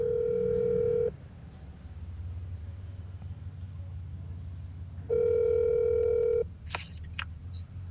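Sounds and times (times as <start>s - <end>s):
electronic phone ringback tones on speakerphone: 0.0s - 1.1s, 5.1s - 6.4s
low rumbling noise: 0.0s - 7.8s.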